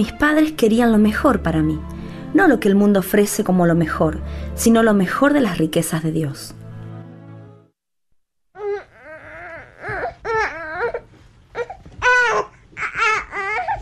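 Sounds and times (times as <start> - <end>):
speech: 0.0 - 6.6
infant crying in high-pitched wailing bursts: 8.6 - 13.7.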